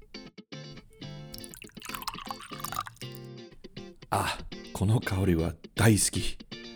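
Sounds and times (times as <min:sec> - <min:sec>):
oak barrel-aged whiskey poured into a glass: 0:00.8 - 0:03.2
speech: 0:04.1 - 0:06.4.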